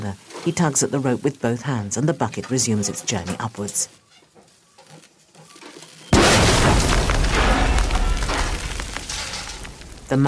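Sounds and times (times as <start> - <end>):
speech: 0.0 - 4.0
explosion in a mine shaft: 6.2 - 10.2.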